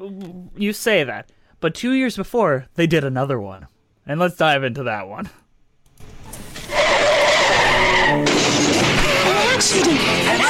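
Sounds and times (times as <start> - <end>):
speech: 0.0 - 5.4, 9.6 - 10.4
car tires screeching in a skid during an accident: 6.5 - 10.4.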